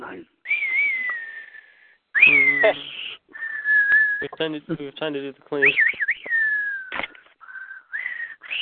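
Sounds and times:
person whistling a wavering melodic tune: 0.5 - 4.4, 5.6 - 8.6
speech: 2.6 - 3.0, 4.2 - 6.0.

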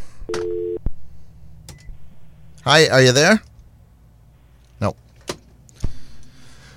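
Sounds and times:
speech: 0.3 - 0.6, 2.6 - 3.5, 4.8 - 5.0
electronic telephone beep of call-in phone lines at a radio station: 0.3 - 0.8.

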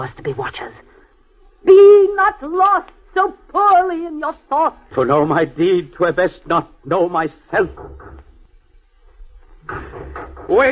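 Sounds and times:
speech: 0.0 - 0.9, 1.6 - 8.2, 9.7 - 10.7
knocking on a door: 7.5 - 8.5, 9.6 - 10.7.

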